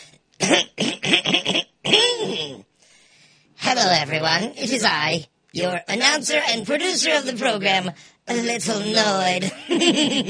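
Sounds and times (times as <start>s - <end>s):
exaggerated throat clearing: 0.0s - 2.7s
speech: 4.0s - 10.2s.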